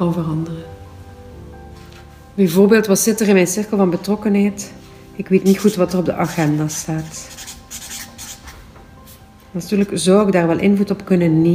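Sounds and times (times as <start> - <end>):
speech: 0.0 - 0.8, 2.4 - 7.4, 9.5 - 11.5
pen scratching on paper writing a note: 5.4 - 8.6.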